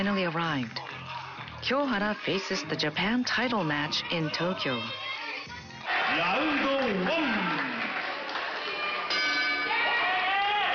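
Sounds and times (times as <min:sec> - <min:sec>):
speech: 0:00.0 - 0:00.8, 0:01.6 - 0:05.1, 0:06.2 - 0:07.5
packed arena crowd roaring: 0:05.1 - 0:10.7
boxing bell ringing at a Japan title match in Tokyo: 0:09.1 - 0:10.1.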